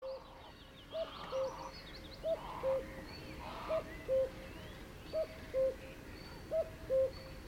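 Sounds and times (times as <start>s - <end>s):
background hiss: 0.0s - 7.4s
cuckoo calling its two-note cu-coo: 1.0s - 2.9s, 3.5s - 4.4s, 5.1s - 7.4s.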